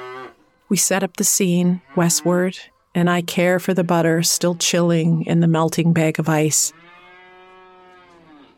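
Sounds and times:
cow mooing in a farm's back pasture: 0.0s - 0.4s, 1.5s - 2.6s, 6.5s - 8.5s
speech: 0.7s - 6.8s.

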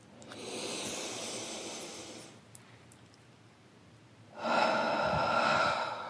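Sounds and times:
deep airy inhale: 0.3s - 2.4s, 4.4s - 6.0s.

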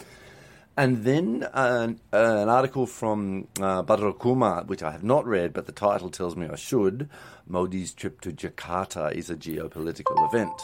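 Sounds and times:
speech: 0.8s - 10.6s
phone notification chime: 10.1s - 10.6s.

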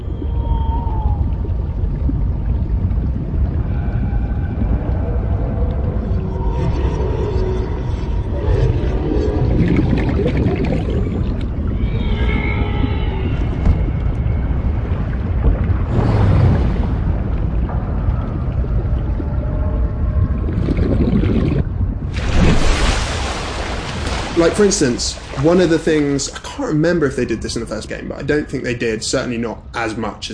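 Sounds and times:
moaning whale-like calls: 0.0s - 2.2s, 3.0s - 16.5s, 17.8s - 21.7s
deep underwater ocean low rumble: 0.0s - 29.7s
speech: 24.4s - 30.3s.

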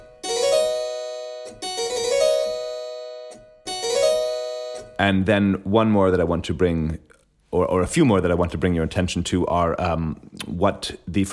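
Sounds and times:
two-note chute Baroque falling ornament played on a keyboard: 0.0s - 5.0s
speech: 5.0s - 11.3s.

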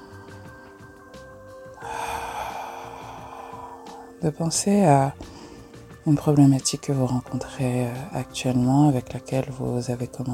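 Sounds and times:
long soft deep breath: 1.8s - 4.2s, 5.2s - 5.9s
speech: 4.2s - 5.3s, 6.0s - 10.3s.

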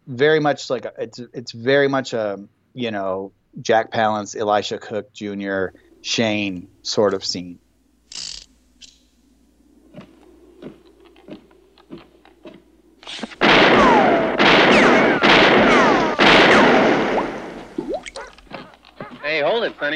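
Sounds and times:
speech: 0.1s - 8.3s
gunshots from target practice in a western film scene: 13.1s - 17.8s.

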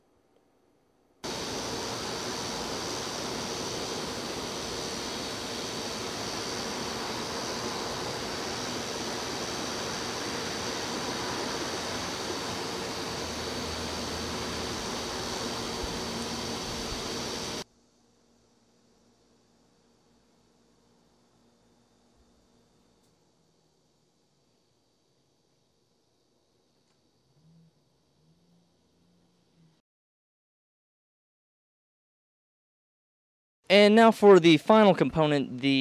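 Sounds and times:
refrigerator running with steady hum and airy hiss: 1.2s - 17.6s
speech: 33.7s - 35.7s.

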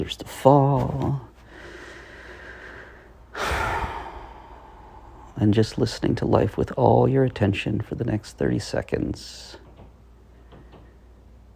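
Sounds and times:
speech: 0.0s - 1.3s, 5.4s - 9.6s
low steady hiss: 0.0s - 11.5s
long deep breath during a guided relaxation exercise: 1.4s - 5.4s.

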